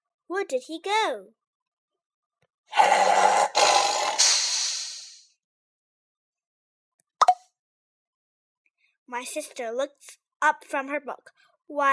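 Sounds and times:
speech: 0:00.3 - 0:01.4, 0:09.1 - 0:11.9
tiger roar from inside a microwave: 0:02.7 - 0:04.3.

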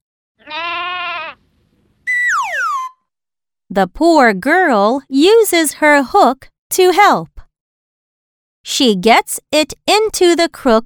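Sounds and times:
little sheep bleating as it falls down: 0:00.4 - 0:01.4
speech: 0:03.8 - 0:07.3, 0:08.6 - 0:10.8.

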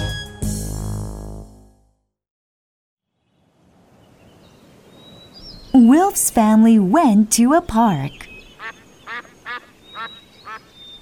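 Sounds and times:
speech: 0:05.8 - 0:08.3
ducks quacking while being fed at a park: 0:08.5 - 0:10.8.

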